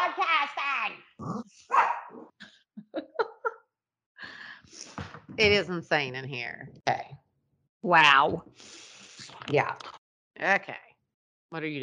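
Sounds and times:
dogs barking: 1.7s - 2.3s
laughter: 2.8s - 3.5s
speech: 5.4s - 7.2s, 7.8s - 8.8s, 9.5s - 10.8s, 11.5s - 11.8s.

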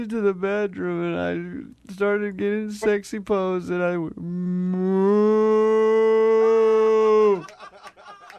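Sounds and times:
speech: 0.0s - 5.8s
person imitating a cow mooing: 4.2s - 7.4s
laughter: 7.2s - 8.3s.

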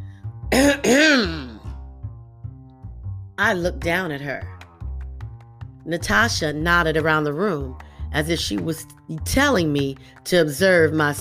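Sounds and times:
woman clearing her throat loudly: 0.5s - 1.6s
speech: 3.4s - 4.6s, 5.8s - 11.1s.

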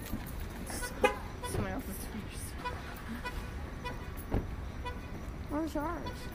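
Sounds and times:
parking-lot traffic rumble: 0.0s - 6.3s
car horn chirps from remote unlocking: 0.7s - 1.7s, 2.6s - 5.2s.

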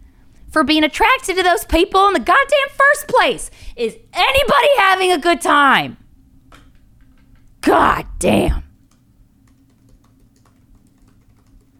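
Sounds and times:
speech: 0.5s - 6.0s, 7.6s - 8.6s
typing on a computer keyboard: 8.8s - 11.7s.

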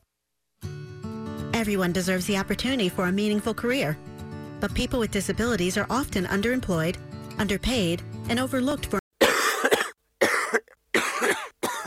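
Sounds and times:
speech: 1.6s - 9.0s
harsh forceful coughing: 9.2s - 11.8s.

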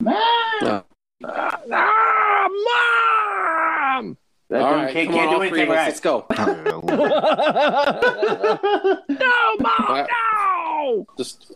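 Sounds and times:
person screaming: 0.0s - 4.2s, 9.1s - 11.0s
speech: 0.6s - 0.9s, 4.0s - 10.2s, 10.9s - 11.5s
laughter: 6.3s - 10.1s.

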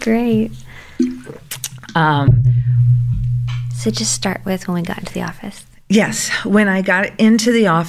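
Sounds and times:
speech: 0.0s - 2.8s, 3.8s - 7.8s
person sipping water: 1.0s - 1.9s
low steady rumble: 2.2s - 5.9s.

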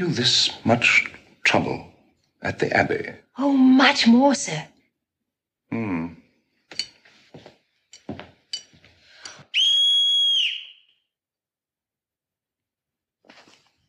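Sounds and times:
speech: 0.0s - 4.7s, 5.7s - 6.8s
loud shrill whistle blast as a call signal: 9.5s - 11.2s.

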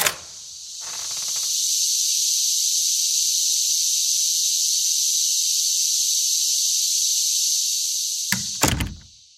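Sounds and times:
Brood X periodical cicadas chorus droning outdoors on the U.S. East Coast: 0.0s - 9.3s
heavy thunks: 8.4s - 9.1s.

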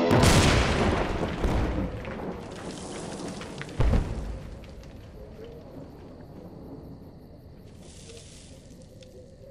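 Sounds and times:
grenades exploding in a firefight: 0.1s - 5.1s.

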